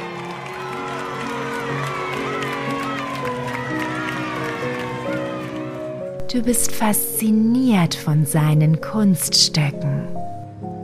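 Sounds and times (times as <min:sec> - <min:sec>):
lively audience applause: 0:00.0 - 0:06.2
speech: 0:06.3 - 0:10.2.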